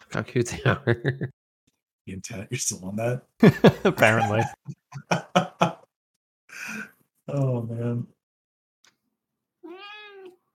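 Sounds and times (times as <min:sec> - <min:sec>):
speech: 0:00.1 - 0:01.4, 0:02.1 - 0:05.4, 0:07.3 - 0:08.2
laughter: 0:00.5 - 0:01.3, 0:03.4 - 0:05.9
cat meowing angrily: 0:09.6 - 0:10.4.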